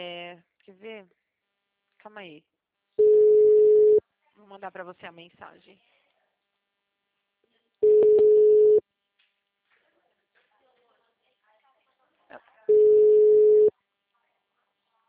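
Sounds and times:
speech: 0:02.0 - 0:02.5, 0:04.4 - 0:05.9
phone ringback tone from an outgoing call: 0:03.0 - 0:04.0, 0:07.8 - 0:08.8, 0:12.7 - 0:13.7.

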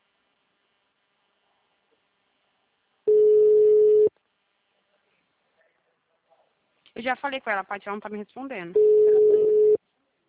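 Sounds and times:
telephone busy signal: 0:03.1 - 0:04.1, 0:08.8 - 0:09.8
speech: 0:07.0 - 0:09.1.

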